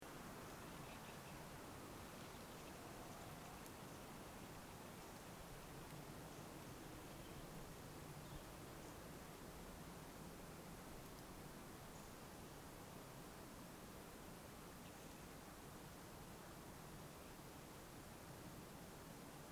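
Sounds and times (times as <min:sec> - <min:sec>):
light wind in a redwood grove: 0:00.0 - 0:19.4.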